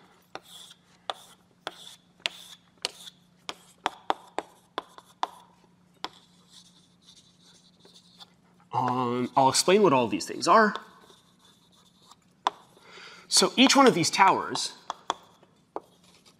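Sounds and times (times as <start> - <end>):
faint steady hum: 0.0 - 16.3
pen drawing a mathematical diagram with tapping strokes and scribbles: 0.3 - 6.7, 10.6 - 12.8, 14.8 - 16.3
speech: 8.8 - 10.9, 13.4 - 14.8.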